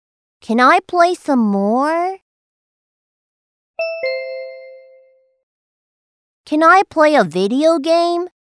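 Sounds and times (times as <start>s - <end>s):
speech: 0.4s - 2.2s, 6.5s - 8.4s
timer two-note chime signalling time is up: 3.8s - 5.4s.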